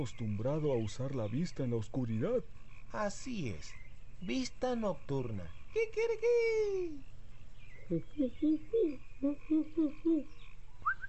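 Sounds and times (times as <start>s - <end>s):
speech: 0.0s - 7.1s, 7.9s - 10.4s
faint low hum: 0.0s - 11.0s
nocturnal bird calling at night from a tree: 5.5s - 7.2s, 7.8s - 11.0s.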